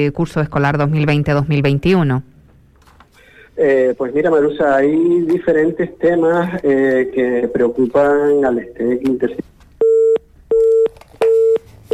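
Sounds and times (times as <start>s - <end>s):
speech: 0.0s - 2.3s, 3.6s - 9.5s
telephone busy tone after a call drops: 9.8s - 11.9s.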